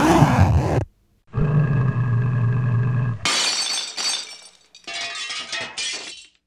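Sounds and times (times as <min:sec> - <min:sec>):
low drawn-out growling grunt: 0:01.3 - 0:03.3
glass shattering with scattering shards during a break-in: 0:03.3 - 0:06.4.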